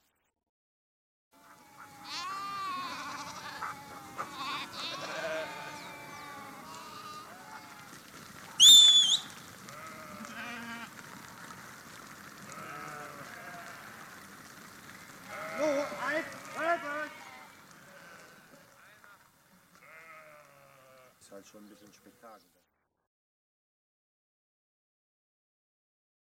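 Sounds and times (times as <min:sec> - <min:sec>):
flock of sheep bleating while following a shepherd: 0:01.4 - 0:11.5, 0:12.5 - 0:14.1, 0:15.2 - 0:18.9, 0:19.8 - 0:21.2
speech: 0:21.3 - 0:22.6.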